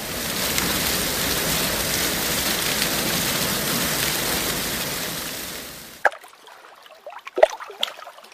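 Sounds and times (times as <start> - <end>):
shower water running: 0.0 - 6.1
water dripping: 0.2 - 8.3.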